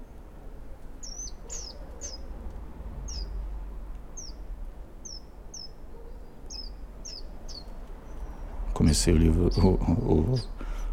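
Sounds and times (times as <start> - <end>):
baby birds chirping in a bird box: 1.0 - 2.2, 3.1 - 3.4, 4.2 - 4.4, 5.0 - 8.4
speech: 8.9 - 10.6.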